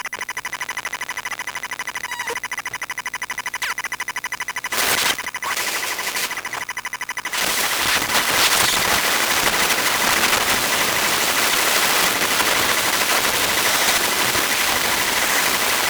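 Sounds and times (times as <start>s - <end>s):
iPhone 8 Qi wireless charging boot electromagnetic noise from an EM pickup: 0.1s - 15.8s.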